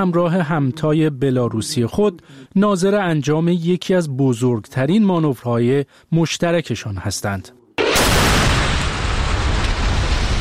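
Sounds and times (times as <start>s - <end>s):
speech: 0.0s - 7.6s
ballistic or cruise missile launch roar: 7.8s - 10.3s.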